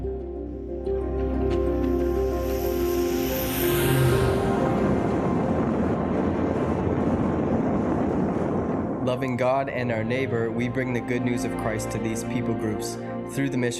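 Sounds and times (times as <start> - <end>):
broad rushing roar: 0.0 - 13.7
small propeller plane flying: 1.3 - 9.0
speech: 9.1 - 13.7.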